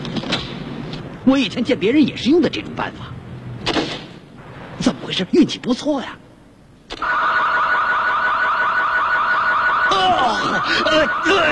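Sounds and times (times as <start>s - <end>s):
speech: 1.2s - 3.2s, 5.1s - 6.2s, 10.0s - 11.5s
car alarm going off: 7.0s - 11.5s.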